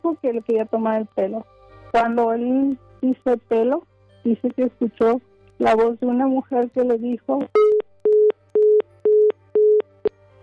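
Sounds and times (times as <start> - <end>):
speech: 0.1 - 7.7
phone busy tone beeps after a dropped call: 7.6 - 9.9.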